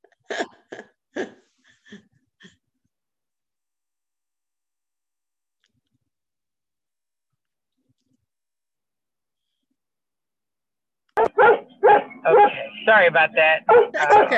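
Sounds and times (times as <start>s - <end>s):
dog barking at another dog: 11.2s - 12.7s, 13.6s - 14.3s
speech: 12.9s - 14.3s.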